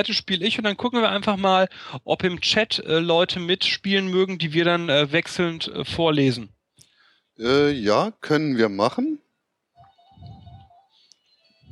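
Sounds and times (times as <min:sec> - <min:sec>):
speech: 0:00.0 - 0:06.6, 0:07.4 - 0:09.2
phone ringing with an electronic tone: 0:09.8 - 0:11.6.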